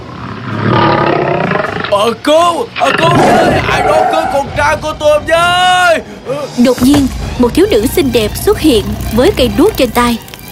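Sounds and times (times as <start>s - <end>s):
red lion roaring: 0.0s - 2.1s, 2.8s - 4.7s
speech: 2.0s - 10.3s.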